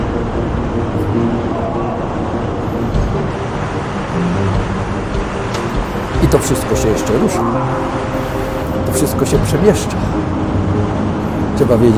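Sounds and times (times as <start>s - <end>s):
meltwater rushing through an ice channel inside a glacier: 0.0s - 11.9s
speech: 6.4s - 8.1s, 9.0s - 10.2s, 11.6s - 11.9s.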